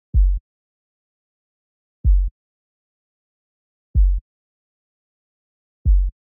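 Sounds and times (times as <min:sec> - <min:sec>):
sub bass at 126 BPM: 0:00.2 - 0:00.4, 0:02.1 - 0:02.3, 0:04.0 - 0:04.2, 0:05.9 - 0:06.1.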